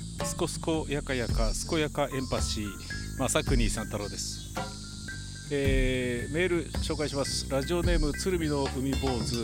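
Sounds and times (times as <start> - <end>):
cicadas buzzing: 0.0 - 9.4
speech: 0.4 - 4.4, 5.5 - 9.4.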